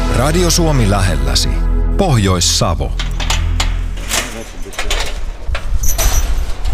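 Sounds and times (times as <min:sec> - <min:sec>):
speech: 0:00.2 - 0:03.1
door creaking open on a groaning hinge: 0:02.9 - 0:06.7.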